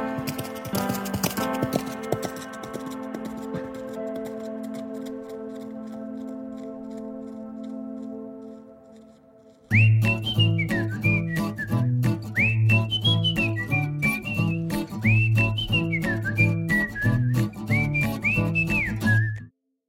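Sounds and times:
herd of wild horses galloping on sand and grass: 0.0 - 9.8
loud sustained whistling drone: 9.7 - 19.5.

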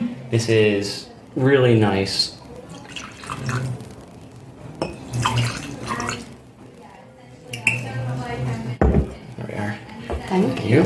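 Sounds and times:
faint voices murmuring: 0.0 - 10.8
speech: 0.3 - 2.4, 3.4 - 3.8
Glen Moray whisky poured into a glass: 2.6 - 3.8, 4.9 - 6.3.

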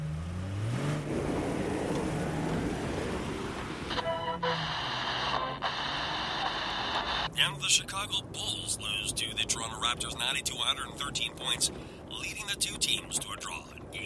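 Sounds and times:
road and engine rumble from inside a moving rental car: 0.0 - 14.0
radio-like tonal burst: 3.9 - 7.8
speech: 7.4 - 14.0.

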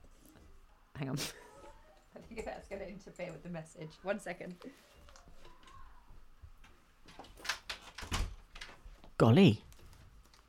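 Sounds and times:
speech: 1.0 - 1.4, 2.4 - 5.0, 9.2 - 9.7
door being pulled shut with rattling clunks and a thud: 7.3 - 8.8.

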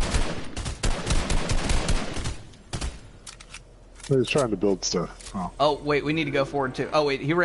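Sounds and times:
gunfire in a video game firefight: 0.0 - 3.0
speech: 4.1 - 7.4.

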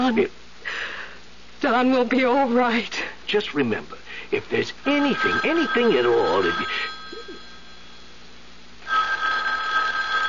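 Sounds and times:
speech: 0.1 - 0.4, 1.6 - 7.0
telephone bell ringing: 4.9 - 8.2, 8.8 - 10.2.

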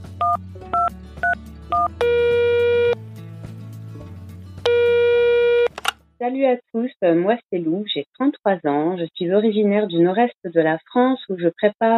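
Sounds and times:
touch-tone keypad beeps: 0.2 - 3.0, 4.7 - 5.8
speech: 6.3 - 11.9.

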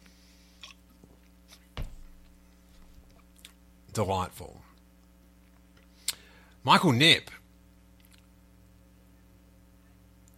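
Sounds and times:
speech: 4.0 - 4.7, 6.6 - 7.4
wet mouth clicks while sipping beer: 8.0 - 8.3.

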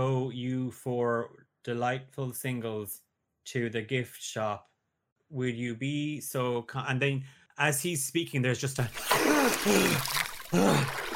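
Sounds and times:
speech: 0.0 - 4.7, 5.3 - 11.1
water sloshing and splashing in a pool: 8.9 - 11.1.

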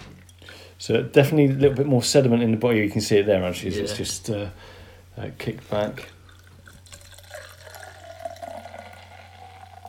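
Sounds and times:
speech: 0.8 - 6.2
beer pouring into a glass: 6.0 - 9.8.

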